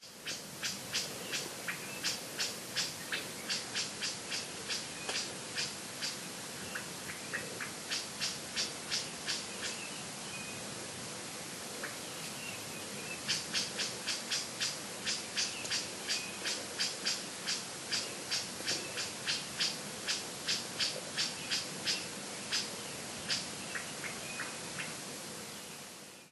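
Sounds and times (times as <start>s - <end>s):
bush warbler singing: 0.0s - 10.6s, 11.8s - 26.3s.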